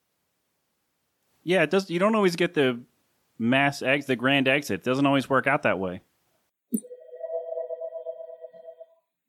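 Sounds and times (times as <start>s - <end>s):
speech: 1.4s - 6.1s
phone ringing with one steady electronic tone: 6.8s - 9.0s.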